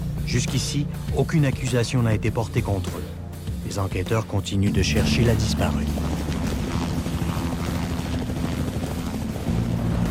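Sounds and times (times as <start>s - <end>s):
speech: 0.3s - 6.2s
coast guard helicopter flying over river: 2.5s - 10.1s.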